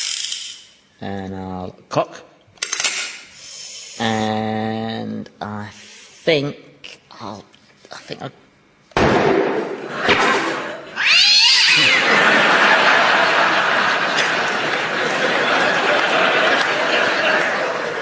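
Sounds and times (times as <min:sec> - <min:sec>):
speech: 0:01.0 - 0:02.3, 0:04.0 - 0:08.4
loud hissing noise: 0:03.3 - 0:04.2, 0:05.6 - 0:06.4
sudden loud bang: 0:09.0 - 0:10.8
laughter: 0:09.6 - 0:11.0, 0:11.6 - 0:17.9
cat yowling: 0:11.0 - 0:12.1.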